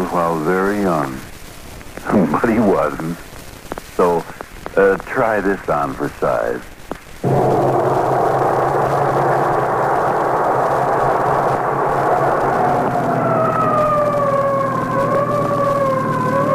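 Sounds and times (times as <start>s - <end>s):
speech: 0.2s - 1.3s, 2.0s - 3.3s, 4.0s - 7.5s
emergency siren wailing: 7.2s - 16.5s
engine roar: 7.2s - 16.5s.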